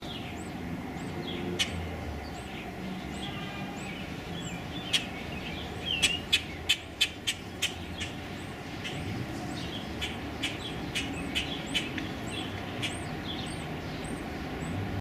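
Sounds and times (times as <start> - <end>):
low rumbling background: 0.0 - 14.9
common grackle sharp clicking chack calls: 5.9 - 8.2, 10.0 - 13.1.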